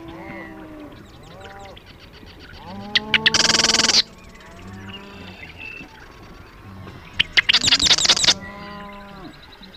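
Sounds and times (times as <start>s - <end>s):
faint low drawn-out calls: 0.0s - 9.7s
Marsh wren singing with ticking notes and rattle: 1.1s - 4.6s, 7.0s - 8.6s.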